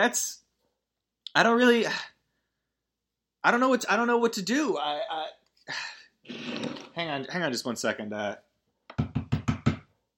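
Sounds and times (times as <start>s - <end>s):
speech: 0.0s - 0.4s, 1.3s - 2.1s, 3.4s - 9.0s
firm knocks on a wooden front door: 8.9s - 9.9s.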